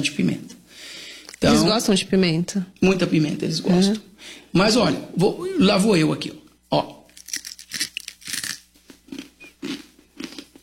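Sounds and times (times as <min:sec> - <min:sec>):
speech: 0:01.4 - 0:07.0
crunchy snack from Niger being bitten and chewed: 0:07.1 - 0:10.6.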